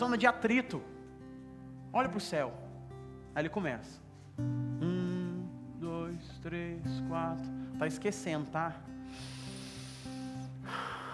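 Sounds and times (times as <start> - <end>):
speech: 0.0 - 1.0, 1.9 - 2.6, 3.4 - 5.0, 6.1 - 9.3
soft sustained music: 0.0 - 11.1
slow deep breathing: 9.0 - 11.1.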